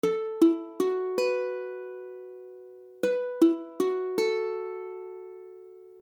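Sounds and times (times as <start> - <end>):
ukulele F sharp minor chords: 0.0 - 6.0.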